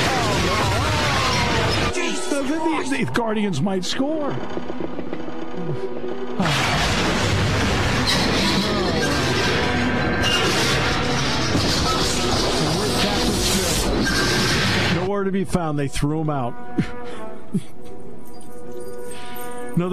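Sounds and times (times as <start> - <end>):
loud explosion: 0.0 - 2.0, 6.4 - 15.1
crashing debris: 0.0 - 2.1, 6.4 - 12.6
speech: 2.8 - 4.9, 5.7 - 6.8, 15.1 - 16.9, 17.5 - 17.8, 19.8 - 19.9.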